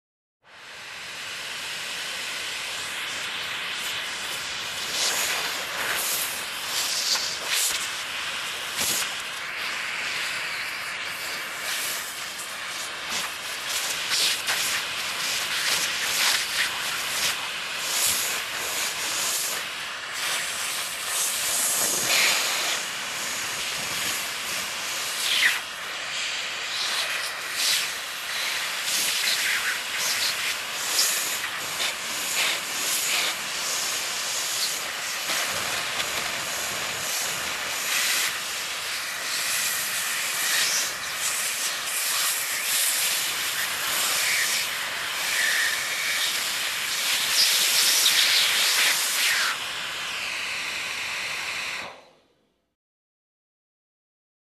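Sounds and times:
vacuum cleaner cleaning: 0.5s - 52.4s.

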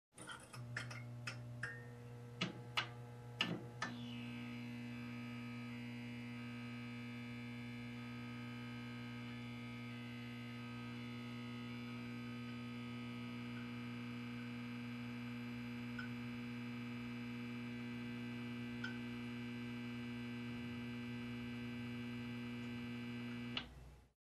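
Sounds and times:
high voltage buzz: 0.3s - 23.7s
switch clicking on: 2.4s - 4.0s.

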